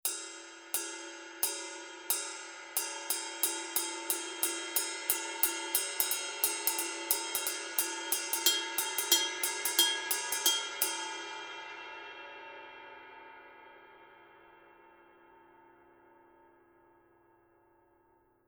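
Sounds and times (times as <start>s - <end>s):
22 inch dry heavy forged bronze ride cymbal pattern: 0.0s - 14.8s.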